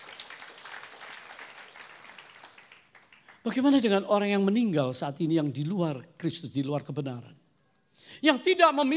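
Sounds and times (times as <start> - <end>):
audience applauding: 0.0 - 3.7
speech: 3.4 - 7.4, 8.2 - 8.9.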